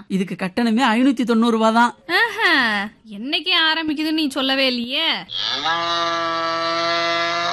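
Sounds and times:
speech: 0:00.1 - 0:07.2
buffalo lowing: 0:05.3 - 0:07.5.

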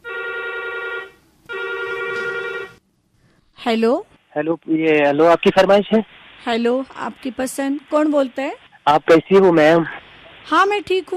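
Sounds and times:
telephone ringing with bright electronic tone for incoming call: 0:00.0 - 0:02.8
speech: 0:03.7 - 0:11.1.

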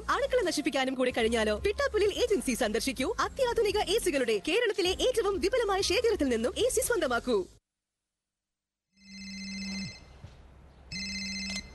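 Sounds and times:
speech: 0:00.1 - 0:07.6
telephone ringing before a call is answered: 0:09.0 - 0:10.1, 0:10.9 - 0:11.7.

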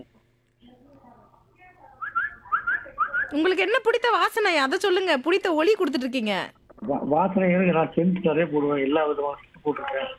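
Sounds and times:
man whistling in imitation of a koel bird: 0:02.0 - 0:03.4
speech: 0:03.3 - 0:10.1.

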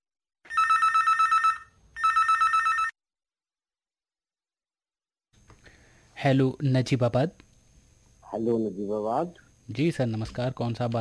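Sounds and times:
telephone ringing with incoming call: 0:00.5 - 0:03.0
speech: 0:06.2 - 0:07.5, 0:08.3 - 0:10.9.

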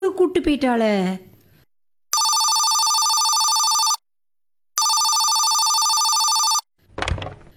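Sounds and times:
speech: 0:00.4 - 0:01.3
telephone ringing in electronic bursts: 0:02.1 - 0:04.0, 0:04.8 - 0:06.7.

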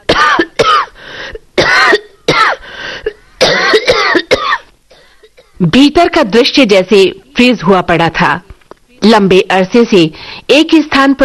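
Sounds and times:
man coughing from inhaled dust: 0:00.1 - 0:00.9, 0:01.6 - 0:05.6
speech: 0:05.6 - 0:11.2.

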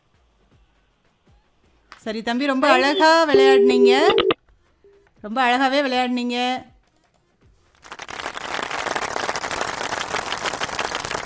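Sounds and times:
speech: 0:02.0 - 0:04.3, 0:05.2 - 0:06.7
crowd applauding: 0:07.8 - 0:11.2.

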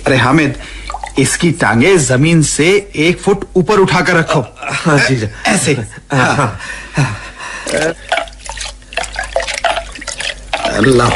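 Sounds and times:
speech: 0:00.0 - 0:08.1, 0:10.8 - 0:11.1
cold water splashing and pouring: 0:07.7 - 0:11.1.

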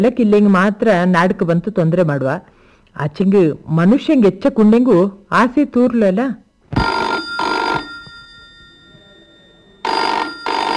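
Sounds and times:
speech: 0:00.0 - 0:06.9
telephone ringing in a double-burst pattern: 0:06.7 - 0:10.7.

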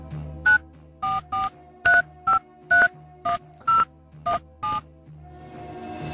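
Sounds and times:
cell phone keypad tones dialing a number: 0:00.5 - 0:04.8.

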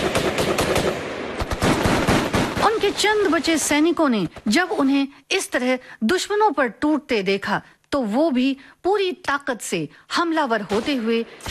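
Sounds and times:
light machine gun firing bursts in battle: 0:00.0 - 0:03.5
speech: 0:02.9 - 0:11.5.

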